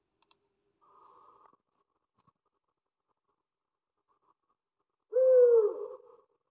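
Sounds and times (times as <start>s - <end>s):
long-eared owl calling: 5.1s - 6.2s.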